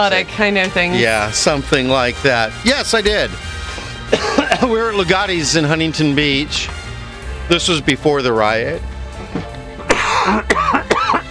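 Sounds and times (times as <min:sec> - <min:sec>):
speech: 0:00.0 - 0:03.5, 0:04.1 - 0:06.8, 0:07.5 - 0:08.9, 0:10.3 - 0:10.6
person clearing throat: 0:04.1 - 0:04.7, 0:09.3 - 0:11.2
person coughing: 0:04.1 - 0:04.8, 0:09.4 - 0:11.2.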